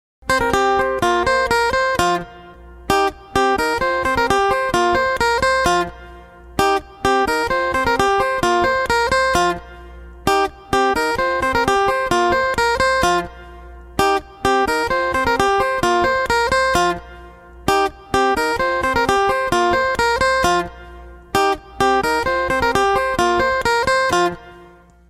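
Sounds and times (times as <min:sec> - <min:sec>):
iPhone original guitar ringtone: 0:00.2 - 0:25.0.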